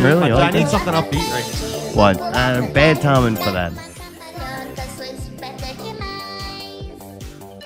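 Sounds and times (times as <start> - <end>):
song with a pounding low drum beat under layered instruments: 0.0 - 3.5
speech: 0.0 - 4.0.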